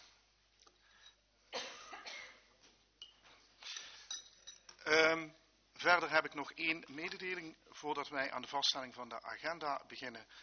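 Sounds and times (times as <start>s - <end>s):
person coughing: 1.5s - 2.5s
glass fishbowl clinking and knocking when set down: 3.0s - 4.8s
speech: 4.9s - 10.4s.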